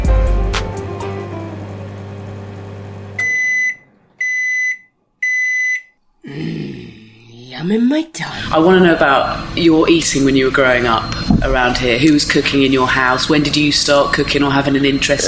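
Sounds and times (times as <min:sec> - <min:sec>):
smoke alarm beeping: 0:03.2 - 0:06.0, 0:10.6 - 0:12.0
speech: 0:07.6 - 0:15.2
low rumbling noise: 0:09.2 - 0:12.3.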